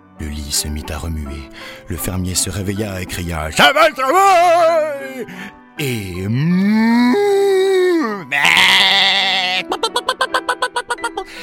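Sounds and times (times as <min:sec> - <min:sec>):
speech: 0:00.2 - 0:07.4
cow mooing: 0:08.2 - 0:09.6
sheep bleating: 0:08.2 - 0:09.7
laughter: 0:09.6 - 0:11.3.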